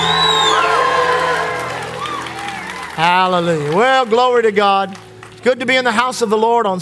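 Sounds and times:
church audience shouting and cheering during a Sunday morning service: 0:00.0 - 0:04.1
speech: 0:03.2 - 0:06.8.

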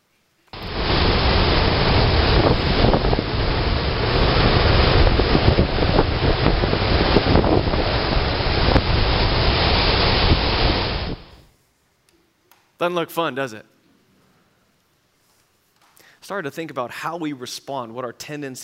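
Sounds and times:
waves churning and slapping on a lake: 0:00.6 - 0:11.4
strong storm wind roaring across a lake: 0:00.6 - 0:11.5
speech: 0:12.8 - 0:13.7, 0:16.2 - 0:18.6.

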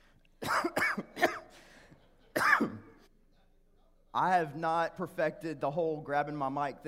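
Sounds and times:
harsh coughs: 0:00.4 - 0:03.1
speech: 0:04.2 - 0:06.8.

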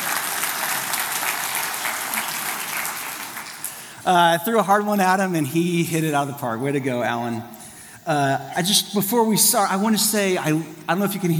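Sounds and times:
audience applause at a church service: 0:00.0 - 0:04.0
speech: 0:04.0 - 0:11.3.

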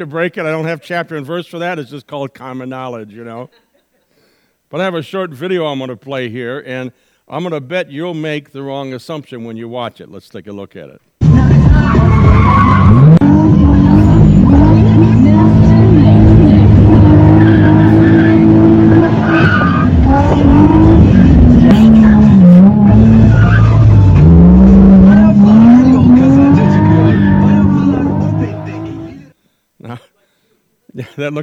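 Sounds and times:
speech: 0:00.0 - 0:03.6, 0:04.7 - 0:11.1, 0:31.2 - 0:31.4
car tires squealing and skidding: 0:11.2 - 0:29.2
car engine roaring and revving while weaving through traffic: 0:11.2 - 0:29.3.

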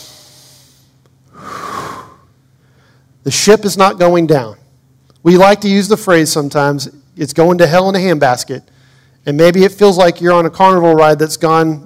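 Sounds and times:
audience taking a deep breath together: 0:00.0 - 0:03.1
speech: 0:03.2 - 0:04.6, 0:05.2 - 0:11.8.

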